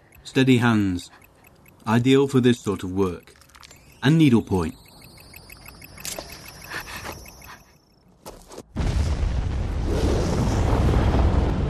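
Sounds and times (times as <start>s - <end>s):
faint clicks: 0.0s - 7.9s
speech: 0.2s - 1.2s, 1.8s - 3.4s, 4.0s - 4.8s
big explosion: 8.8s - 11.6s.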